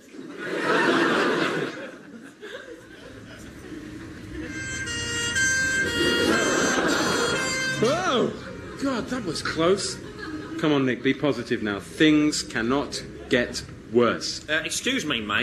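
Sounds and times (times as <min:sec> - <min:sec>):
laughter: 0:00.0 - 0:11.8
street sound: 0:02.8 - 0:15.4
ambulance siren wailing: 0:04.2 - 0:08.9
speech: 0:09.1 - 0:15.4.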